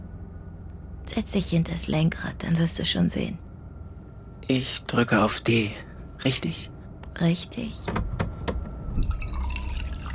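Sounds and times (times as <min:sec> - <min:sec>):
speech: 0:01.1 - 0:03.5, 0:04.5 - 0:08.0
tea being poured into a cup: 0:09.0 - 0:10.1.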